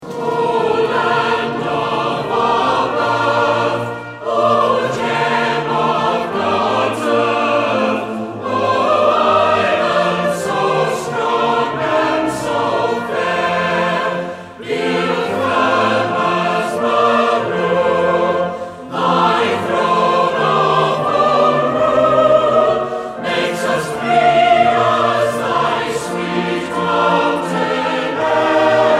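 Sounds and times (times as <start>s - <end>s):
national anthem music: 0.0s - 28.9s.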